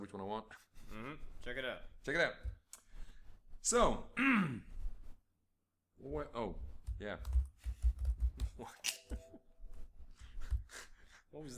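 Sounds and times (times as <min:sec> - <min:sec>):
speech: 0:00.0 - 0:02.6, 0:03.6 - 0:04.7, 0:06.0 - 0:07.5, 0:08.6 - 0:09.4, 0:10.8 - 0:11.5
typing on a computer keyboard: 0:06.8 - 0:09.2.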